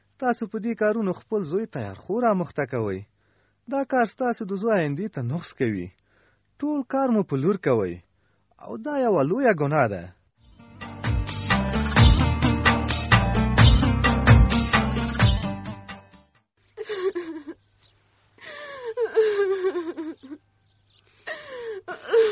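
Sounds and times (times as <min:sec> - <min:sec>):
speech: 0:00.2 - 0:03.1, 0:03.7 - 0:06.0, 0:06.6 - 0:10.2
rhythmic music: 0:10.6 - 0:16.3
girl crying in wailing sobs: 0:16.8 - 0:17.6, 0:18.4 - 0:20.4, 0:21.3 - 0:22.3.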